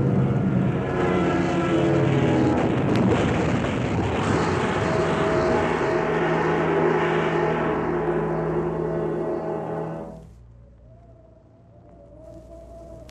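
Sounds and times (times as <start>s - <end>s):
heavy rushing wind-like noise of a descending plane: 0.0s - 10.0s
airplane engine roar: 0.0s - 13.0s.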